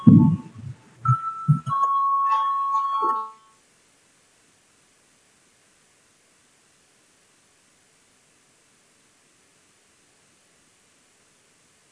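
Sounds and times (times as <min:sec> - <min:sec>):
brief low murmurs: 0:00.0 - 0:01.8
thumps: 0:00.0 - 0:01.9
steady high electronic voting bell ringing in a large room: 0:00.0 - 0:03.5.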